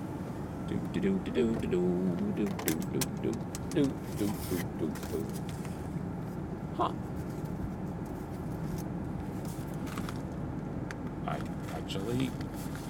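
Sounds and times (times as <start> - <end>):
steady outdoor noise: 0.0 - 12.8
speech: 0.7 - 5.7, 6.8 - 7.1, 11.3 - 12.8
metallic clicks and clatter of a mailbox being opened: 2.4 - 3.9.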